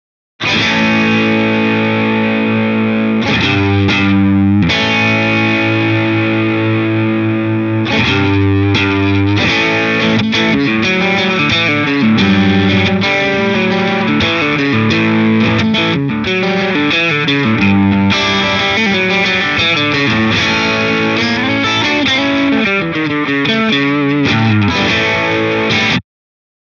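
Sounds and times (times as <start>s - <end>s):
guitar through rig with wet gain: 0.4s - 26.0s.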